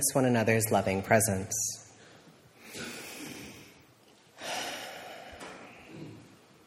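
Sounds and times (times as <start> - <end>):
speech: 0.0 - 1.8
group breathing in and out together: 2.0 - 6.3.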